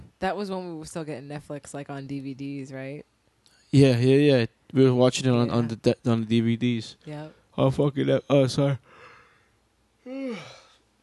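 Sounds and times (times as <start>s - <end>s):
speech: 0.2s - 3.1s, 3.7s - 9.0s, 10.0s - 10.6s
breathy yawn: 10.0s - 10.8s.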